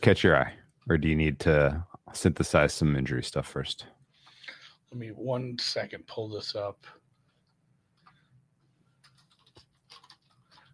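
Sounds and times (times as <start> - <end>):
speech: 0.0 - 4.0, 4.9 - 7.0
typing on a computer keyboard: 9.0 - 10.7.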